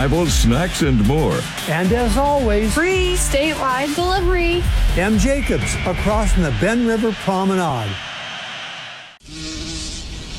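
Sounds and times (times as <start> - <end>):
speech: 0.0 - 8.1
bee buzzing: 9.2 - 10.3.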